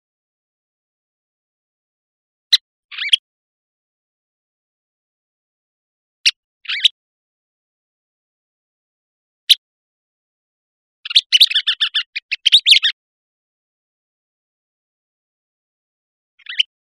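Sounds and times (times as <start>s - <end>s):
Western kingbird calling with sharp kip and sputtering chatter: 2.9s - 3.2s, 11.1s - 13.0s, 16.4s - 16.7s.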